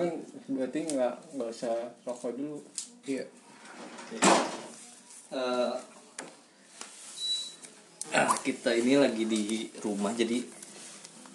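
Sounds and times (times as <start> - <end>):
speech: 0.0 - 4.6, 5.3 - 6.3, 8.1 - 10.6
door at home closing with a thump: 3.9 - 4.7.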